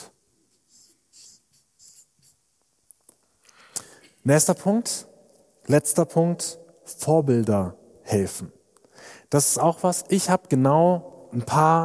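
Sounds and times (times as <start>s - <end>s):
pen scratching across paper: 0.7s - 2.4s
speech: 4.2s - 5.1s, 5.7s - 8.6s, 9.3s - 11.8s.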